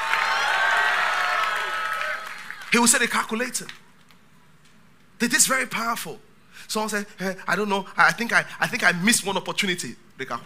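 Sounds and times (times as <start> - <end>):
crowd cheering with shouts and whoops: 0.0 - 2.8
crowd clapping: 0.0 - 4.2
speech: 2.7 - 3.9, 5.2 - 10.4.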